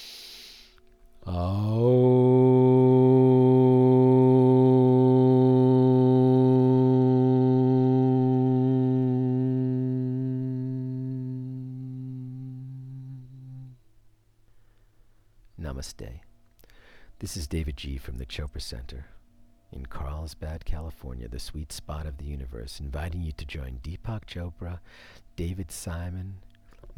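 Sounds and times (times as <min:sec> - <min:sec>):
deep breath in: 0:00.0 - 0:01.8, 0:16.6 - 0:17.2, 0:24.8 - 0:25.3
people chanting Om together to close a meditation: 0:01.2 - 0:13.8
speech: 0:01.3 - 0:01.8, 0:15.8 - 0:16.3, 0:17.2 - 0:26.9.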